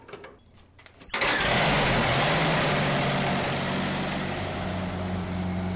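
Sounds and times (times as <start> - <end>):
1931 hand-crank tractor engine running: 1.1 - 5.7.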